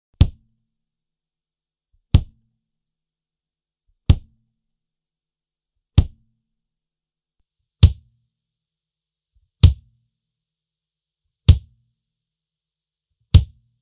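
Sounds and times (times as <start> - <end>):
dry kick drum hits recorded with a D112 microphone: 2.2 - 2.4, 4.1 - 4.4, 6.0 - 6.2, 7.8 - 8.1, 9.6 - 9.9, 11.5 - 11.8, 13.4 - 13.6.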